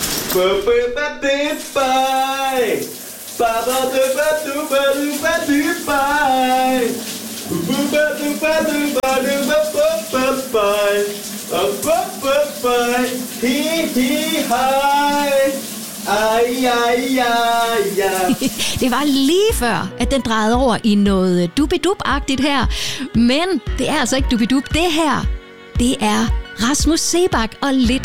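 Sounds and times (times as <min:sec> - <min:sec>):
shower water running: 0:00.0 - 0:19.7
man singing in the shower: 0:00.3 - 0:18.5
speech: 0:00.4 - 0:28.0.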